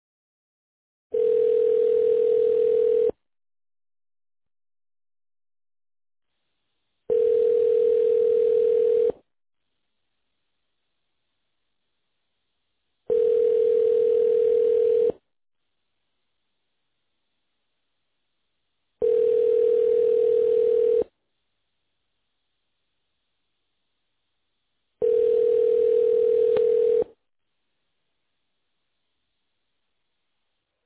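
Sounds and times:
telephone ringback tone during call transfer: 0:01.1 - 0:03.2, 0:07.1 - 0:09.2, 0:13.1 - 0:15.2, 0:19.0 - 0:21.1, 0:25.0 - 0:27.1.

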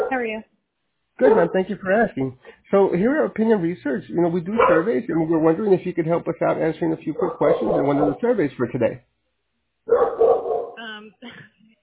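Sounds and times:
dog barking: 0:00.0 - 0:00.2, 0:01.2 - 0:01.6, 0:04.5 - 0:05.0, 0:07.2 - 0:08.3, 0:09.9 - 0:10.8
speech: 0:00.1 - 0:00.5, 0:01.2 - 0:09.1, 0:09.9 - 0:10.2
dog yelping barks: 0:01.2 - 0:01.5, 0:04.5 - 0:05.0, 0:07.2 - 0:08.2, 0:09.9 - 0:10.8.

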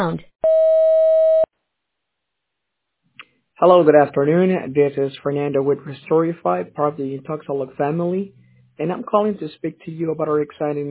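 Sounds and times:
speech: 0:00.0 - 0:00.4, 0:03.6 - 0:10.9
answering machine beep: 0:00.4 - 0:01.5.

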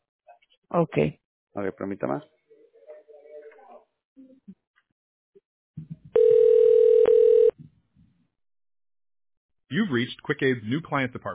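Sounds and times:
speech: 0:00.7 - 0:02.4, 0:09.7 - 0:11.3
telephone dial tone while placing a call: 0:06.2 - 0:07.6.

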